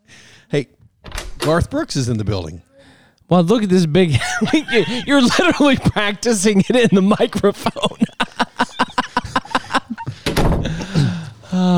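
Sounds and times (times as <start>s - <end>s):
speech: 0.5s - 0.8s, 1.4s - 2.7s, 3.3s - 8.4s
door closing with a solid thud and rattling settle: 1.0s - 1.7s, 10.1s - 11.0s
laughter: 3.8s - 11.7s.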